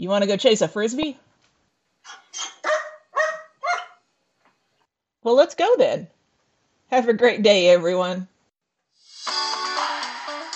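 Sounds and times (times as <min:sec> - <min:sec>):
speech: 0:00.0 - 0:01.3, 0:05.2 - 0:06.2, 0:06.9 - 0:08.3
dog barking: 0:02.0 - 0:04.0.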